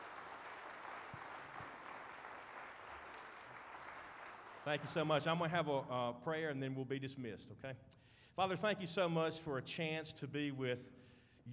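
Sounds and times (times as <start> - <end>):
audience applause: 0.0 - 5.3
speech: 4.6 - 11.5.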